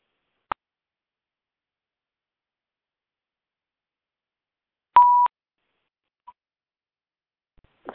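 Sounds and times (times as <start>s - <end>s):
phone keypad beep: 5.0s - 5.3s.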